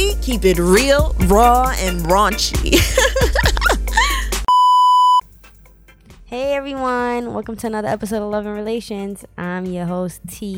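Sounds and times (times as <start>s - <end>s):
speech: 0.3s - 3.6s, 6.3s - 10.5s
loud steady electronic beep: 4.5s - 5.2s.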